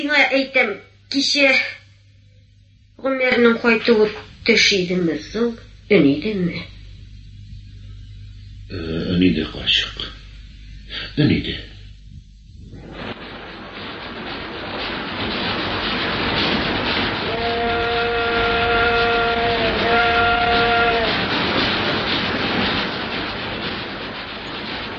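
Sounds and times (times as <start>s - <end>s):
speech: 0.0s - 1.8s, 3.0s - 6.7s, 8.7s - 10.2s, 10.9s - 11.7s
trains passing: 3.1s - 24.9s
train horn: 17.2s - 21.4s.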